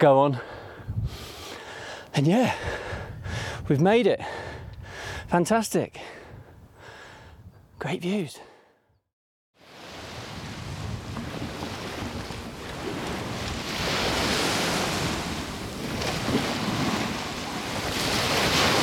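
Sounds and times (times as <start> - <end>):
speech: 0.0 - 1.3, 2.2 - 2.8, 3.7 - 4.6, 5.3 - 6.2, 7.8 - 8.5
wind gusting across the microphone: 0.0 - 1.5, 2.4 - 7.8, 9.8 - 18.8
sea waves washing in: 9.6 - 18.8.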